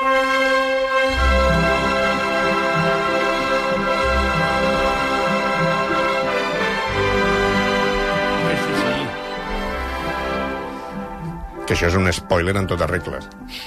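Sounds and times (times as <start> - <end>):
full orchestra playing an opera overture: 0.0 - 13.3
speech: 11.8 - 13.6.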